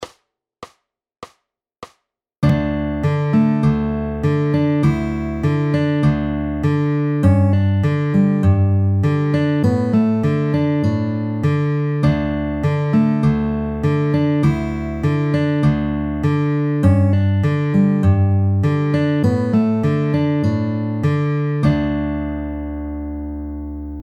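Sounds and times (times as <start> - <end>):
fingerpicked guitar in drop D tuning: 2.4 - 24.0.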